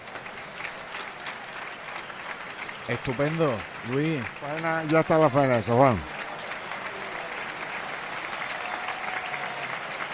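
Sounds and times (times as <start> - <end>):
large bullring crowd applauding in El Puerto: 0.0 - 10.1
speech: 2.9 - 6.2.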